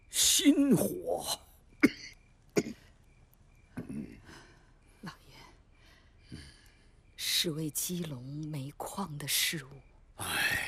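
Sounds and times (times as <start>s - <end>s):
speech: 0.5s - 1.4s, 7.4s - 10.4s
person coughing harshly: 1.8s - 2.8s.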